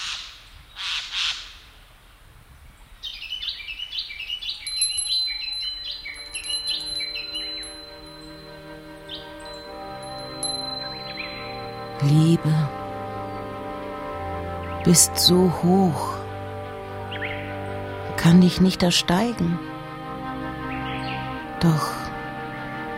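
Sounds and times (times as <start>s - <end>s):
busy chorus of overlapping bird chirps and calls with whistling tones: 2.9s - 16.2s, 17.0s - 19.6s, 20.2s - 22.0s
speech: 12.0s - 12.8s, 14.8s - 16.2s, 18.2s - 19.7s, 21.6s - 22.0s.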